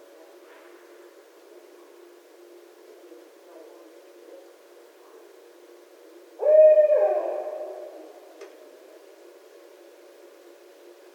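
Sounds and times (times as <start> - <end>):
barred owl hooting: 6.4 - 8.3.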